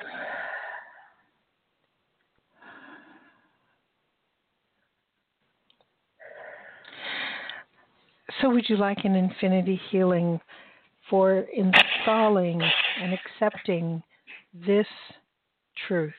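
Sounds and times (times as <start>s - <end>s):
slow deep breaths: 0.0s - 1.3s, 2.5s - 3.8s, 6.2s - 8.0s, 10.5s - 11.0s
speech: 8.3s - 15.2s, 15.8s - 16.1s.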